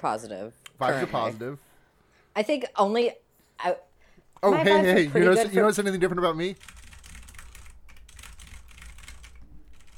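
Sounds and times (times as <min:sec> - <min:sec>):
speech: 0:00.0 - 0:01.7, 0:02.4 - 0:06.8
typing on mechanical keyboard with Cherry MX Black switches: 0:06.6 - 0:09.9.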